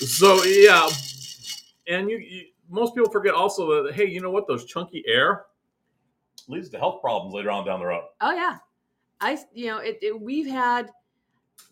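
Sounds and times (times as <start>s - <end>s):
speech: 0.0s - 1.1s, 1.9s - 5.5s, 6.5s - 8.6s, 9.2s - 11.0s
stir stick rattling in a cup: 0.0s - 1.8s.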